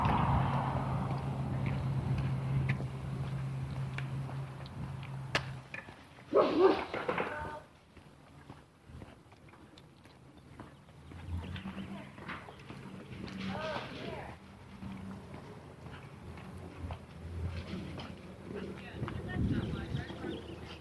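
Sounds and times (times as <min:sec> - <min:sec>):
faint outdoor rustling: 0:00.0 - 0:20.7
footsteps: 0:00.0 - 0:20.7
big dog barking behind a fence: 0:06.3 - 0:07.0.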